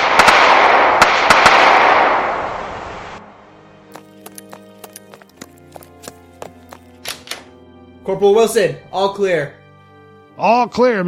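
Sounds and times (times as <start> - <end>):
volley of pistol and rifle gunfire: 0.0 - 2.5
speech: 8.1 - 9.6, 10.4 - 11.0.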